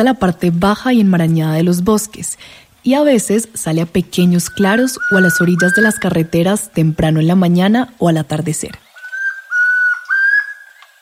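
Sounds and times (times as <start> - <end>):
speech: 0.0 - 8.8
tororoi comprapan antpitta song: 4.3 - 6.3, 8.8 - 11.0.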